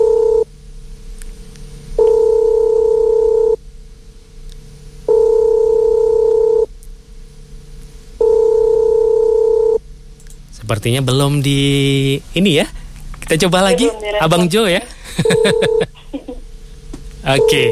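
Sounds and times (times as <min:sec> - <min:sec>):
telephone line tone while a caller phones a listener: 0:00.0 - 0:00.4, 0:02.0 - 0:03.6, 0:05.1 - 0:06.7, 0:08.2 - 0:09.8, 0:15.3 - 0:15.8, 0:17.3 - 0:17.6
speech: 0:10.7 - 0:16.1, 0:17.3 - 0:17.6
laughter: 0:15.0 - 0:16.4.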